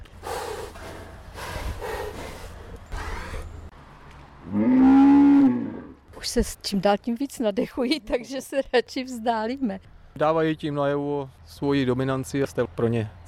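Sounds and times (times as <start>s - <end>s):
forest buffalo snorting in a fenced enclosure: 0.2s - 3.6s
forest buffalo low drawn-out grunting bellow: 4.4s - 6.0s
speech: 6.2s - 13.2s.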